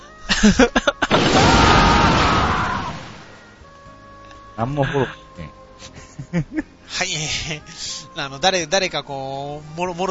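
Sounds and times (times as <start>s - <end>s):
speech: 0.4s - 1.8s, 4.6s - 10.0s
cannon firing: 1.1s - 3.4s
loud broad roaring cannon blast: 1.1s - 3.4s.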